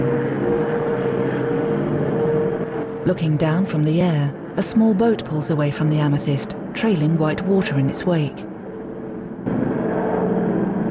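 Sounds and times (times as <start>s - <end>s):
Short Sunderland flying boat engines droning overhead: 0.0s - 10.8s
speech: 3.1s - 8.5s.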